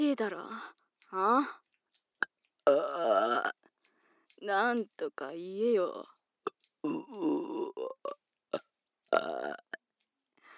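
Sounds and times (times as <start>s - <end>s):
speech: 0.0s - 1.6s, 2.6s - 3.6s, 4.4s - 6.1s, 6.8s - 9.7s
long loud drawn-out burp: 2.7s - 3.6s, 6.8s - 8.2s, 9.2s - 9.8s.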